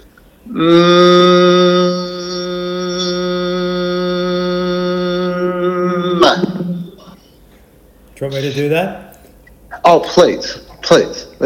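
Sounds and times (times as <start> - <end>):
speech: 0.4 - 1.2, 8.2 - 9.0, 9.8 - 11.4
person humming a sustained mm as a resonance exercise: 0.4 - 7.2.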